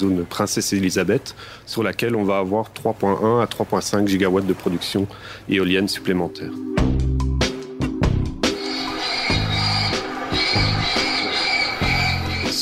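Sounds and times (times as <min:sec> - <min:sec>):
speech: 0:00.0 - 0:07.1
electronic bird-deterrent system blaring synthetic raptor calls: 0:08.4 - 0:12.5.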